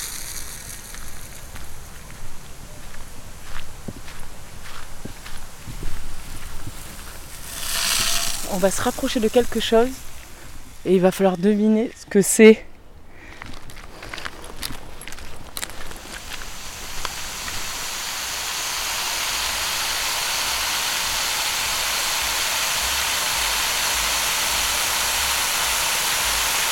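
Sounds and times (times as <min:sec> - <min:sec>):
footsteps: 0:00.0 - 0:12.2, 0:13.2 - 0:18.0
running water rushing as a broad steady hiss: 0:06.8 - 0:11.6, 0:15.8 - 0:26.7
speech: 0:08.5 - 0:10.0, 0:10.8 - 0:12.7.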